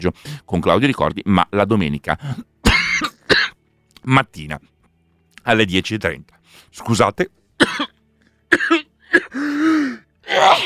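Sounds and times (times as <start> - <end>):
speech: 0.0 - 2.5, 4.0 - 4.7, 5.4 - 7.9
sharp coughs: 2.6 - 3.6, 7.6 - 9.4.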